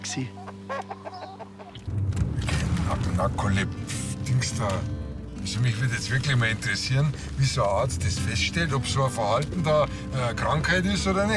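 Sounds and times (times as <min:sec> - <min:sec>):
speech: 0:00.2 - 0:01.7, 0:02.9 - 0:11.3
chicken clucking: 0:00.4 - 0:01.8.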